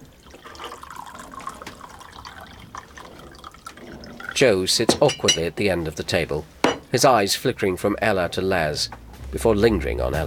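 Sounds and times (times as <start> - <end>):
tea pouring from a teapot into mugs: 0.0 - 5.6
speech: 4.4 - 10.2.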